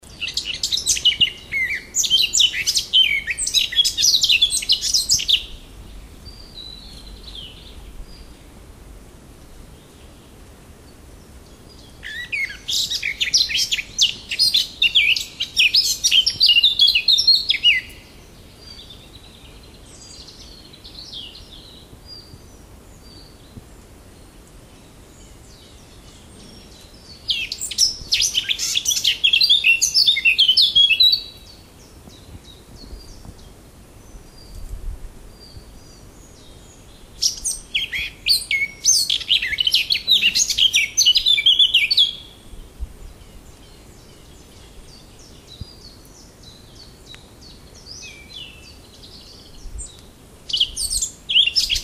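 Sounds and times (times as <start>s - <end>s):
birdsong in Chernogolovka: 0.0s - 51.8s.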